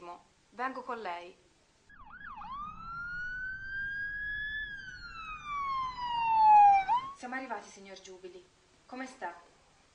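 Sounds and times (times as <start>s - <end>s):
speech: 0.1s - 1.5s, 7.2s - 9.5s
ambulance siren wailing: 1.9s - 7.2s
low road rumble: 1.9s - 7.2s.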